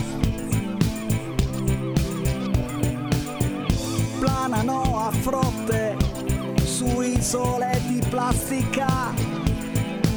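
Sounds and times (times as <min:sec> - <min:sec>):
seagulls crying in flight over a wide expanse: 0:00.0 - 0:10.1
speech: 0:05.2 - 0:05.8, 0:07.3 - 0:09.4.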